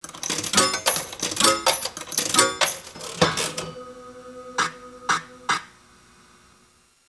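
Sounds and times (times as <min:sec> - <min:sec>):
coins inserted into slot machine: 0:00.0 - 0:03.8
slot machine spinning: 0:00.1 - 0:05.7.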